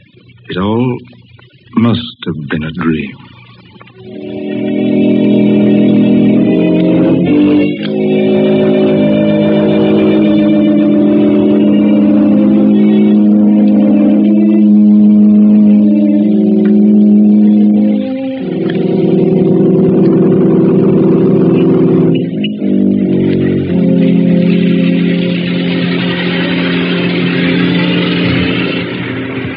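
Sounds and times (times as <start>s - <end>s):
speech: 0.5s - 3.4s
car engine revving as car pulls in: 4.0s - 29.5s.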